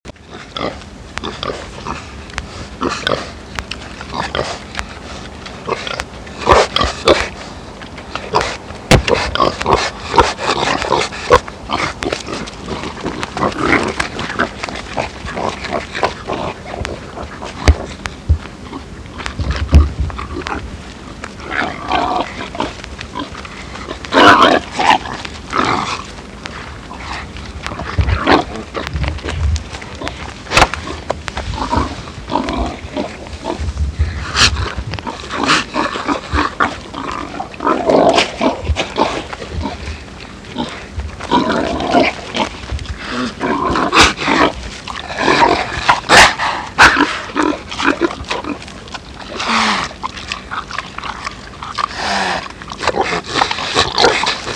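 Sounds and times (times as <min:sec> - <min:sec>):
pigs: 0:00.1 - 0:54.5.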